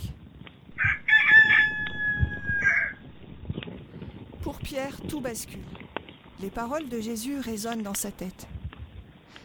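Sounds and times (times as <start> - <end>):
rooster crowing in the morning: 0.8 - 3.0
speech: 4.6 - 5.8, 6.4 - 8.6.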